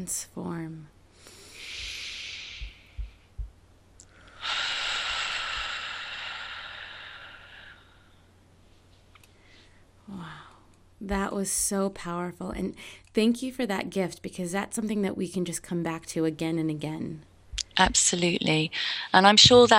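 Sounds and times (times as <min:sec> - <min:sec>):
speech: 0:00.0 - 0:01.0, 0:11.0 - 0:19.7
deep breath during a guided breathing exercise: 0:01.1 - 0:03.4, 0:04.1 - 0:08.3.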